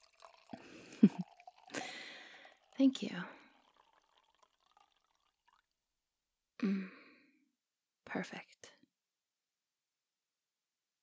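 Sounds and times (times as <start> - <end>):
wine pouring into a glass: 0.0 - 5.8
speech: 1.0 - 1.2, 2.8 - 3.4, 6.6 - 7.0, 8.1 - 8.6.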